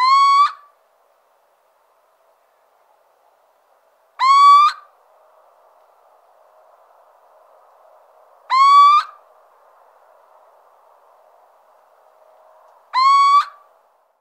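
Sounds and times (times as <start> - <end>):
little owl giving mewing rising hoots: 0.0 - 0.7, 4.2 - 4.9, 8.5 - 9.2, 12.9 - 13.6
faint background hiss: 0.0 - 14.1.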